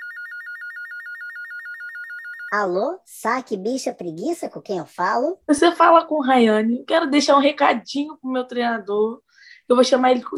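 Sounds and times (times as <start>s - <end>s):
telephone ringing with electronic trill: 0.0s - 2.8s
speech: 2.5s - 10.3s.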